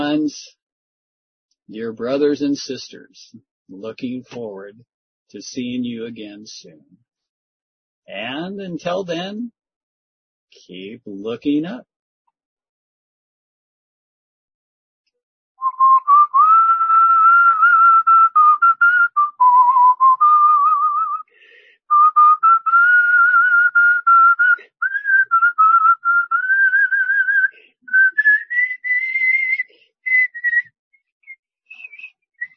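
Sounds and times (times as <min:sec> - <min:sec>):
speech: 0:00.1 - 0:00.6, 0:01.7 - 0:07.1, 0:08.1 - 0:09.6, 0:10.5 - 0:11.9
person whistling a wavering melody: 0:15.6 - 0:21.3, 0:21.9 - 0:32.5.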